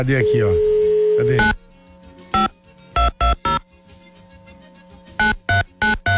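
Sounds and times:
electronic phone tones while placing a call: 0.0 - 1.6, 2.4 - 3.6, 5.2 - 6.1
faint steady hum: 0.0 - 1.6
speech: 0.0 - 1.6.

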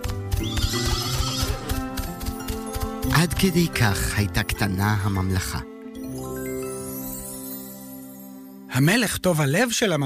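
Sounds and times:
pony hooves clip-clopping: 0.0 - 3.9
pony neighing: 0.4 - 1.9
speech: 3.1 - 5.7, 8.8 - 10.0.

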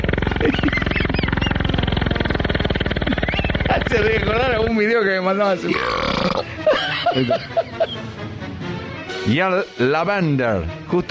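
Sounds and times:
laughter: 0.0 - 2.0, 6.4 - 8.1
loud croaking burp: 0.0 - 3.7, 5.6 - 6.6
speech: 3.9 - 7.6, 9.2 - 11.0.

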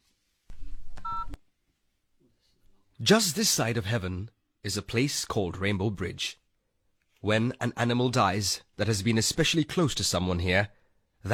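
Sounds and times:
mobile phone keypad tones: 1.0 - 1.4
speech: 3.0 - 6.4, 7.2 - 11.3.

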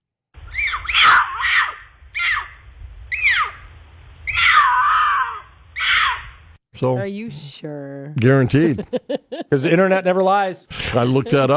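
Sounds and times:
mountain lion mating call screeching wails: 0.4 - 6.5
speech: 6.8 - 11.5
laughter: 8.2 - 10.0, 10.7 - 11.5.

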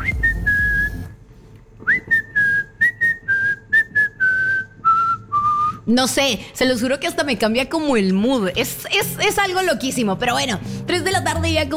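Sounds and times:
whistled melody from a song: 0.0 - 1.2, 1.8 - 5.8
speech: 5.9 - 11.7.

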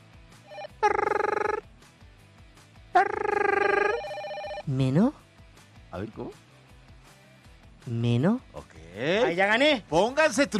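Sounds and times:
telephone ringing after a call is dialed: 0.5 - 1.6, 3.4 - 4.6
speech: 4.7 - 5.2, 6.0 - 6.5, 7.9 - 10.5.

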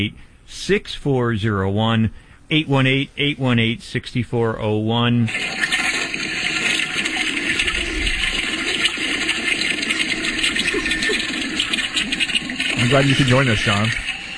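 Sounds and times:
speech: 0.0 - 5.7, 12.8 - 14.1
toilet flushing with a loud steady rush of water: 5.2 - 14.3.

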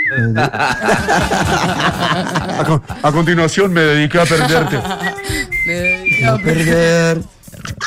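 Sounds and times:
person whistling a melody: 0.0 - 0.4, 4.9 - 6.8
laughter: 0.1 - 7.0
speech: 0.1 - 7.8.

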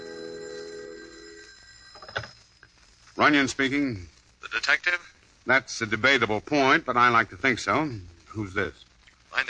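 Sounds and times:
telephone bell ringing: 0.0 - 2.6
speech: 3.2 - 9.4.

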